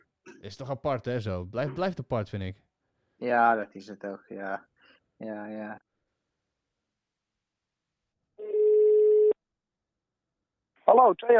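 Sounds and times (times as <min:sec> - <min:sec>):
speech: 0:00.4 - 0:05.9, 0:10.9 - 0:11.3
ringback tone from an outgoing phone call: 0:08.4 - 0:09.4.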